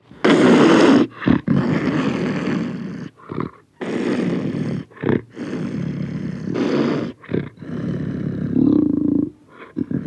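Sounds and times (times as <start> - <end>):
panther growls: 0.2 - 10.0.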